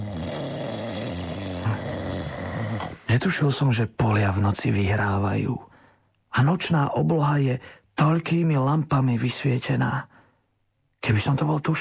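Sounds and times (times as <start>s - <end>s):
low rumbling snoring: 0.0s - 3.1s
speech: 3.1s - 5.7s, 6.4s - 10.2s, 11.0s - 11.7s.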